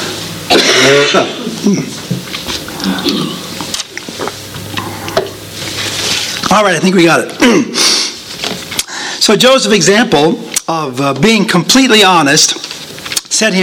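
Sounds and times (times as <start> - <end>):
person clearing throat to ease a tickle: 0.5 - 2.0, 2.7 - 3.6, 7.4 - 7.9
speech: 0.8 - 2.0, 2.9 - 3.4, 6.5 - 8.0, 9.2 - 12.7, 13.3 - 13.6.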